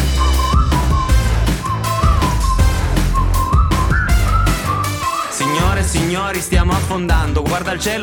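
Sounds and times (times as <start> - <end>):
whistled melody: 0.0 - 6.2
full loud band with steady drums: 0.0 - 8.0
speech: 6.3 - 8.0.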